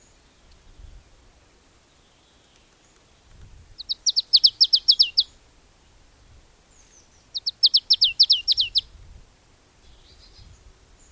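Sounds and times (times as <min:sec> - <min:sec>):
marsh tit call of sharp downslurred notes: 0:03.8 - 0:05.3, 0:07.3 - 0:08.8.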